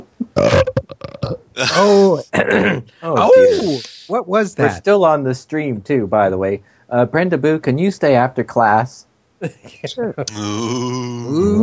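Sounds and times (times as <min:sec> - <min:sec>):
speech: 0:00.4 - 0:00.8, 0:01.6 - 0:11.6
voice sounds: 0:00.4 - 0:02.4, 0:03.1 - 0:04.8, 0:10.3 - 0:11.6
loud burp: 0:00.4 - 0:02.8, 0:10.3 - 0:11.6.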